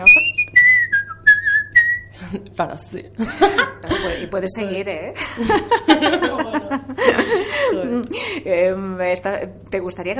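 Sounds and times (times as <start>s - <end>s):
speech: 0.0s - 0.6s, 2.3s - 10.1s
person whistling a short melodic phrase: 0.0s - 2.1s
laughter: 3.2s - 4.2s, 5.2s - 8.2s.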